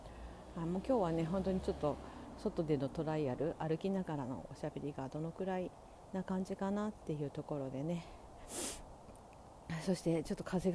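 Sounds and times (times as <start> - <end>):
quiet outdoor noise: 0.0 - 10.7
speech: 0.6 - 8.6, 9.7 - 10.7
sniffing through a runny nose: 8.4 - 8.9.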